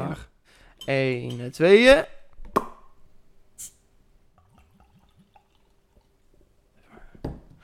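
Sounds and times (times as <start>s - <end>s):
speech: 0.2s - 2.7s
black beer pouring into glasses: 4.4s - 6.4s.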